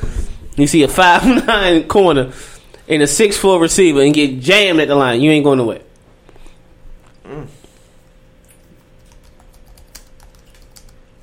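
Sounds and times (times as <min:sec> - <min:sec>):
low hum: 0:00.0 - 0:11.2
speech: 0:00.6 - 0:05.9
typing on a computer keyboard: 0:09.1 - 0:11.0.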